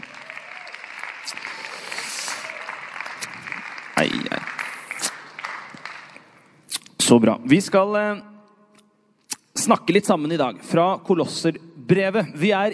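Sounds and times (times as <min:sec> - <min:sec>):
crowd clapping in sustained applause: 0:00.0 - 0:06.3
speech: 0:01.3 - 0:01.7, 0:04.0 - 0:04.6, 0:07.1 - 0:08.3, 0:09.6 - 0:12.7.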